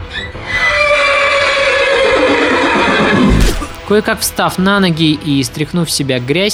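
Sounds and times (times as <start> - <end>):
exhausted horse neighing: 0.0 - 3.8
speech: 3.9 - 6.5.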